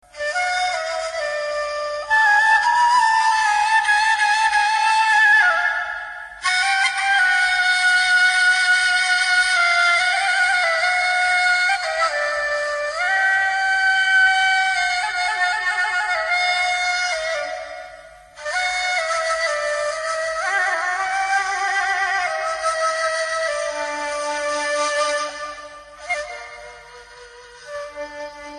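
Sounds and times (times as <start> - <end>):
Arab flute playing: 0.0 - 28.5.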